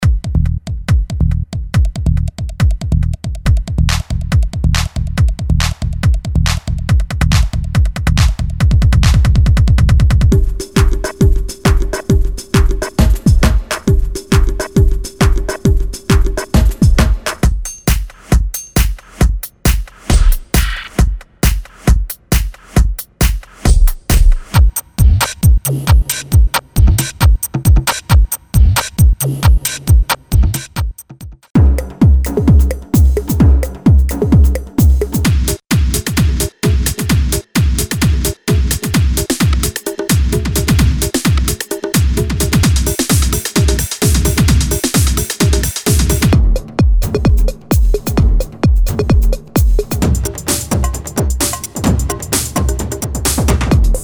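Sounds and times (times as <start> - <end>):
trance drum loops: 0.0 - 54.0.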